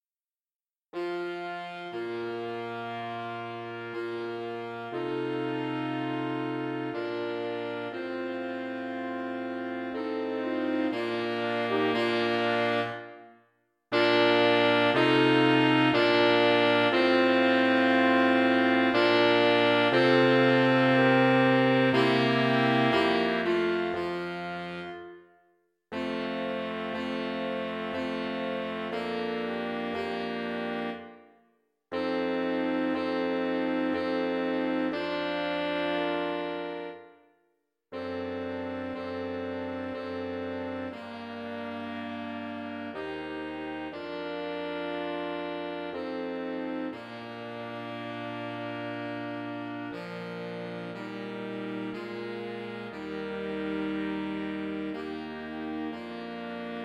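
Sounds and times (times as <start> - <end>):
saxophone quartet playing: 1.0 - 31.3, 31.9 - 37.2, 38.0 - 56.8.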